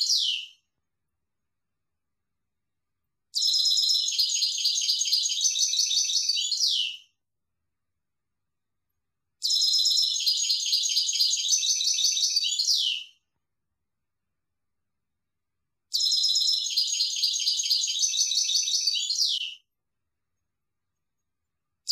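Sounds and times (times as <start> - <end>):
European goldfinch singing high twittering phrases: 3.4 - 7.0, 9.4 - 13.2, 15.9 - 19.6.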